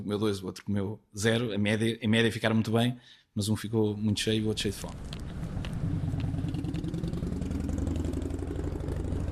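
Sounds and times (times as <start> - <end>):
speech: 0.0 - 5.3
engine idling in street traffic in Lisbon: 5.0 - 9.3.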